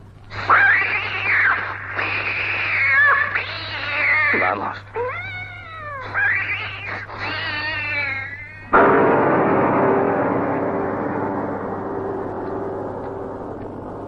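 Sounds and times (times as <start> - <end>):
cat caterwauling while fighting a cobra: 0.4 - 8.8
speech: 4.5 - 4.9
harsh noisy rush: 8.8 - 14.0.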